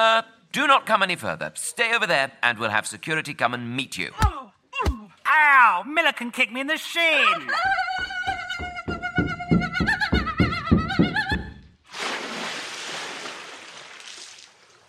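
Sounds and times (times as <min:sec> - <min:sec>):
speech: 0:00.0 - 0:08.0
quick footsteps of a bound blindfolded person running across a TV set and up a ramp: 0:07.9 - 0:11.6
loud broad splash into a 10-foot-deep dunk tank: 0:11.9 - 0:14.6.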